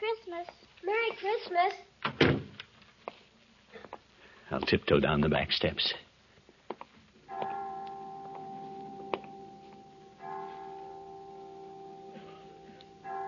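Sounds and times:
speech: 0.4 - 2.3, 4.5 - 6.0
clock chime striking five o'clock: 7.3 - 13.2.

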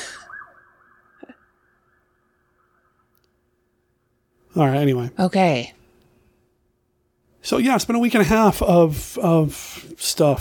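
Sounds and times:
sirens wailing: 0.0 - 3.4
speech: 4.6 - 5.8, 7.4 - 10.3.

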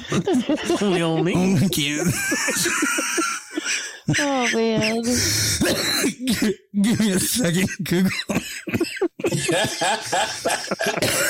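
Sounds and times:
breathy laughter: 0.0 - 5.2, 8.2 - 11.2
coughing: 0.0 - 11.2
speech: 0.1 - 3.4, 4.1 - 11.2.

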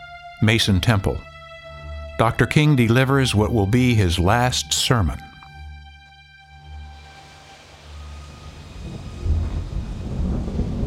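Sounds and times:
speech: 0.4 - 1.3, 2.2 - 5.3
thunder rumbling during a storm: 7.7 - 10.8.

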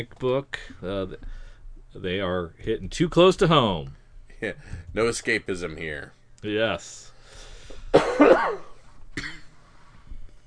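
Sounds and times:
speech: 0.0 - 8.7
faint low hum: 0.0 - 10.4
harsh cough: 7.9 - 9.6.

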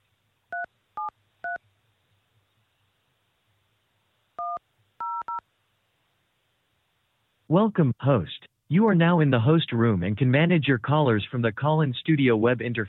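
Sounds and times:
faint telephone line hiss: 0.0 - 12.8
telephone keypad tones entering a PIN: 4.4 - 5.4
speech: 7.5 - 12.8.

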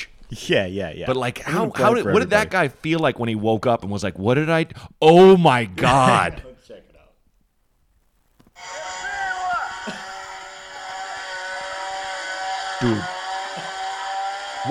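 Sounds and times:
speech: 0.3 - 6.8, 12.8 - 13.2
chainsaw running: 9.7 - 14.6.

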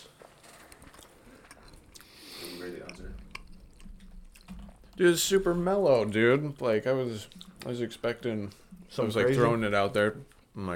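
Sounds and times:
chewing a thin crisp seaweed snack: 0.4 - 5.0
speech: 5.0 - 10.7.

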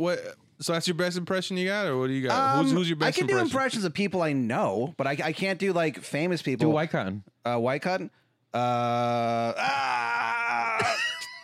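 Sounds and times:
speech: 0.0 - 10.2
person imitating a man waking up screaming in pain: 8.8 - 11.4.

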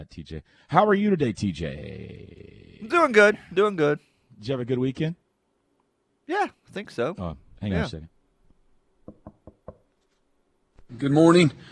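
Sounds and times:
speech: 0.0 - 5.2, 6.3 - 8.1, 10.9 - 11.7
sharp knocking on a door: 9.0 - 9.9.

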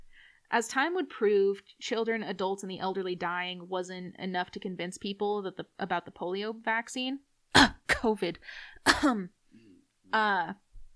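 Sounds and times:
speech: 0.5 - 9.4, 10.1 - 10.6
odd throaty cough: 8.8 - 9.3.

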